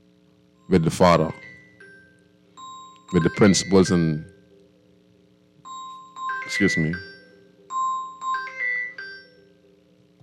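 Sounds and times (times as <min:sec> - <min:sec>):
low steady hum: 0:00.0 - 0:10.2
speech: 0:00.7 - 0:01.5, 0:03.1 - 0:04.3, 0:06.5 - 0:07.1
phone ringing with bright electronic chime notes: 0:01.3 - 0:04.8, 0:05.6 - 0:10.0.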